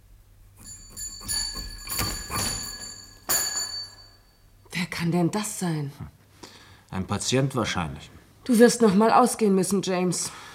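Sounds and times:
pulled doorbell jangling at a home: 0.5 - 4.6
speech: 5.0 - 6.2, 6.9 - 10.5.

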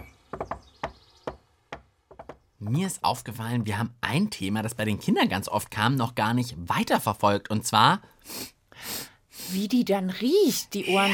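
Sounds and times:
rhythmic knocking on a villa's door: 0.0 - 2.5
speech: 2.7 - 8.9, 9.5 - 11.1.

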